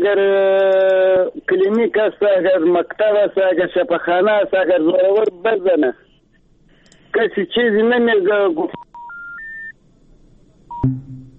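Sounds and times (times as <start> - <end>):
speech: 0.0 - 6.1, 7.1 - 8.9
electronic telephone beeps as a radio phone-in call cuts off: 8.8 - 9.7
loud low telephone buzzing tone: 10.7 - 11.3.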